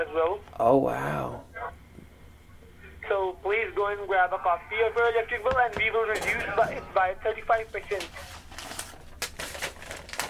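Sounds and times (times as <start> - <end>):
speech: 0.0 - 1.5, 3.1 - 8.3
papers being shuffled and rummaged on a desk: 5.0 - 10.2.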